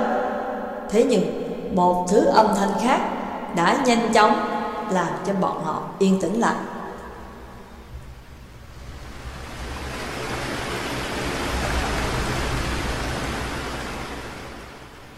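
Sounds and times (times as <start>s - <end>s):
speech: 0.9s - 6.8s
water rippling against both sides of a boat: 6.4s - 15.1s.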